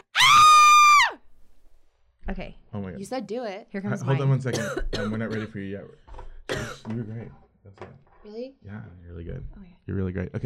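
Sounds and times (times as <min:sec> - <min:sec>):
person performing an acted scream for an audition: 0:00.0 - 0:01.2
speech: 0:02.3 - 0:10.4.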